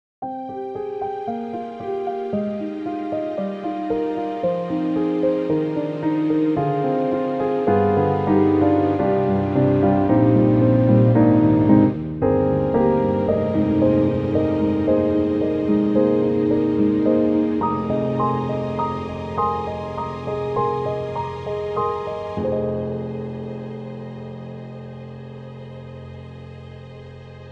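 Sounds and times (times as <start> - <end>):
piano concert on Steinberg HALion 7 sampler: 0.2 - 27.5.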